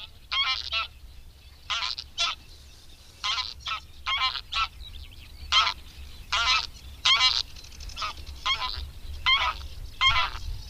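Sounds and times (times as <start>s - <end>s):
greylag goose honking: 0.0s - 0.9s, 1.7s - 2.4s, 3.2s - 4.7s, 5.5s - 10.4s.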